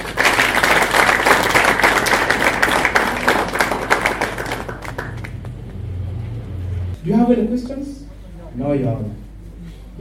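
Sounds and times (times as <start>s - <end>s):
audience applause welcoming a member of parliament: 0.0s - 6.1s
speech: 7.3s - 8.0s, 8.6s - 9.2s.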